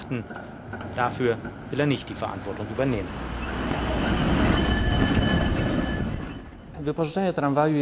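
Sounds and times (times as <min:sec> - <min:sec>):
Wrocław tram rumbling along its rails: 0:00.0 - 0:07.5
speech: 0:00.1 - 0:03.4, 0:06.8 - 0:07.8
thin high tram wheel squeals: 0:02.4 - 0:06.9.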